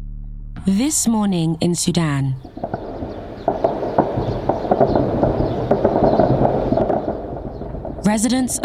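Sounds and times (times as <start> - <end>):
speech: 0.6 - 2.5, 8.0 - 8.6
continuous broadband rumble: 2.4 - 8.6
gunfire during clashes in Khartoum between military junta and paramilitary group: 2.5 - 8.4.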